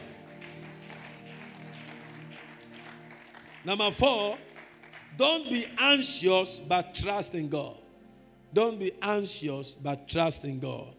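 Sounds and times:
audience clapping: 0.0s - 6.2s
speech: 3.6s - 4.5s, 5.2s - 7.8s, 8.5s - 10.9s.

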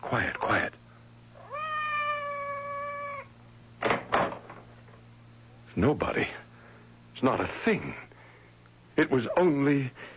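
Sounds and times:
speech: 0.0s - 0.8s, 5.8s - 6.4s, 7.2s - 8.1s, 9.0s - 10.1s
cat meowing outside a door: 1.4s - 3.3s.

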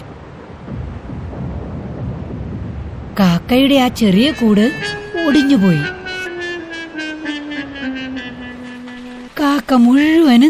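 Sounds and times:
thunder rumbling: 0.0s - 6.6s
heavy rain: 0.0s - 10.4s
speech: 3.2s - 6.0s, 9.7s - 10.4s.

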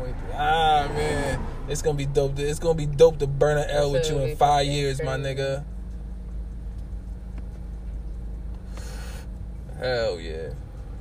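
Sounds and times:
vehicle passing whoosh: 0.0s - 5.4s
low traffic rumble from cars on a road: 0.0s - 10.9s
speech: 1.7s - 5.7s, 9.8s - 10.6s.

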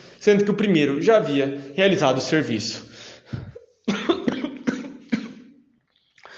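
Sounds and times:
speech: 0.2s - 2.9s
man coughing in a rough fit: 3.4s - 5.6s.

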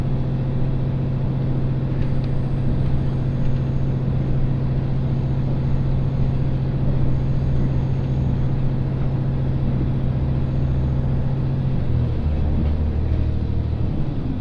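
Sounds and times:
single-car GV-E400 hybrid train engine hum in motion: 0.0s - 14.4s.

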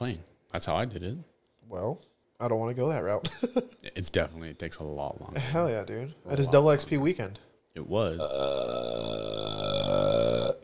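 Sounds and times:
speech: 0.0s - 9.3s
long throaty burp: 8.2s - 10.6s.

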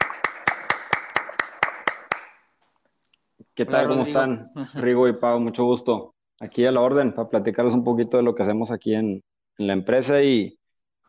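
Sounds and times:
sharp hand claps of applause: 0.0s - 2.5s
speech: 3.6s - 10.6s.

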